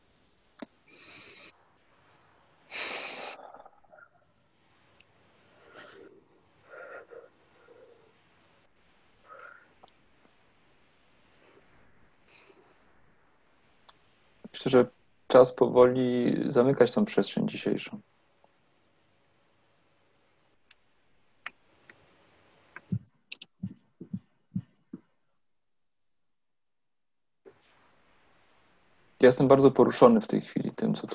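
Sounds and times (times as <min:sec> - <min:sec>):
group of people taking a deep breath: 0:02.7 - 0:03.7, 0:05.5 - 0:08.0
speech: 0:14.7 - 0:18.1, 0:29.3 - 0:31.1.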